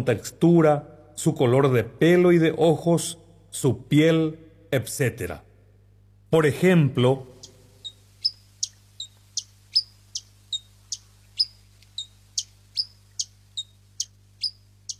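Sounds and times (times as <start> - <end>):
speech: 0.0 - 5.5, 6.3 - 7.3
hummingbird chirping: 7.3 - 14.9.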